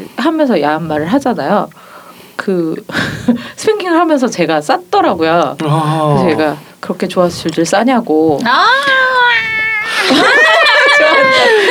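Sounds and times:
speech: 0:00.2 - 0:01.8, 0:02.4 - 0:10.4
cat meowing: 0:08.7 - 0:10.2
laughter: 0:09.9 - 0:11.6.

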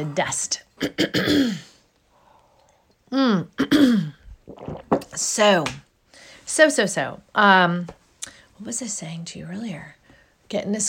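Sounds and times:
speech: 0:00.0 - 0:01.7, 0:03.1 - 0:05.8, 0:06.5 - 0:08.0, 0:08.6 - 0:10.8
person clearing throat: 0:00.8 - 0:01.7, 0:03.6 - 0:04.8.

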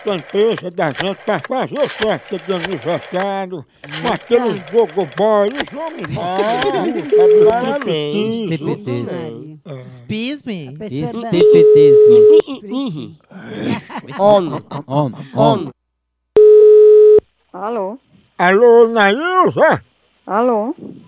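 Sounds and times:
laughter: 0:00.0 - 0:09.5, 0:10.9 - 0:15.8
speech: 0:00.0 - 0:15.8, 0:17.6 - 0:21.0
telephone ringback tone while placing a call: 0:07.0 - 0:07.8, 0:11.3 - 0:12.4, 0:16.4 - 0:17.2.

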